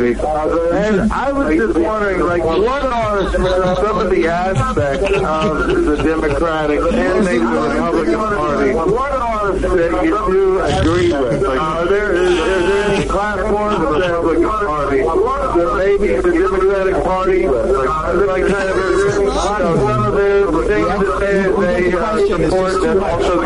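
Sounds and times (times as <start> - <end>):
caller speaking over a phone line: 0.0 - 23.4
delayed echo of caller's voice from a television: 0.0 - 23.4
laughter: 2.2 - 9.0, 10.7 - 14.5, 18.2 - 23.4.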